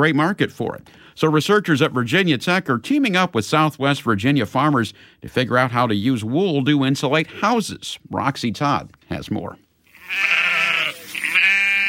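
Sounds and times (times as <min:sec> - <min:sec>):
speech: 0:00.0 - 0:10.6
sheep bleating on a farm: 0:09.9 - 0:11.8.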